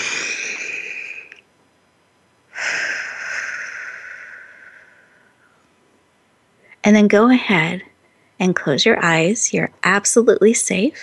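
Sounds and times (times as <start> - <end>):
group of people taking a deep breath together during a guided exercise: 0.0 - 1.4, 2.5 - 5.6
speech: 6.8 - 11.0.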